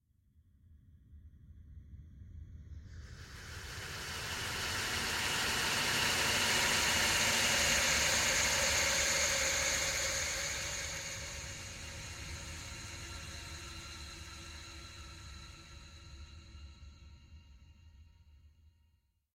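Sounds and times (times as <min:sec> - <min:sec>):
ghostly shudder: 0:03.0 - 0:16.9.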